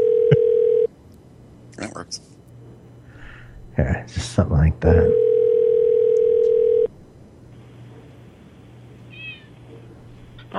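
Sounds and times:
phone line ringing on an outgoing call to a home phone: 0:00.0 - 0:00.9, 0:05.0 - 0:06.9
speech: 0:02.0 - 0:02.3, 0:03.8 - 0:05.3
soft cat meow: 0:09.1 - 0:09.5.

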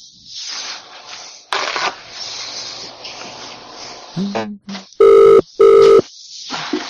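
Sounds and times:
people talking: 0:04.2 - 0:06.0
telephone ringing: 0:05.0 - 0:06.0.

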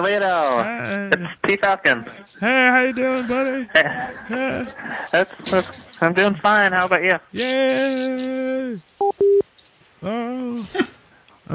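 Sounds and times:
speech: 0:00.0 - 0:09.4, 0:10.0 - 0:11.5
laughter: 0:00.6 - 0:06.4
electronic phone keypad tone while dialing: 0:09.0 - 0:09.4.

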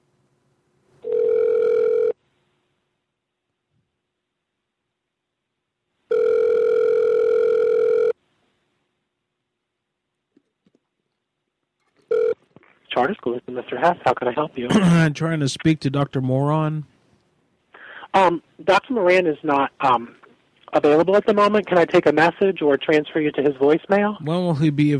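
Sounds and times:
telephone ringing tones on a call to a school: 0:01.0 - 0:02.2, 0:06.1 - 0:08.2, 0:12.1 - 0:12.4
speech: 0:13.1 - 0:16.9, 0:18.2 - 0:24.9.

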